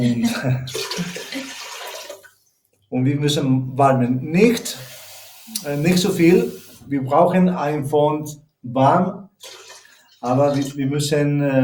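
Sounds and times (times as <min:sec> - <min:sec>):
speech: 0:00.0 - 0:01.1, 0:02.9 - 0:04.9, 0:05.5 - 0:09.6, 0:10.2 - 0:11.6
water pouring into a cooking pot for paella: 0:00.0 - 0:02.4, 0:04.6 - 0:06.8, 0:09.4 - 0:10.9.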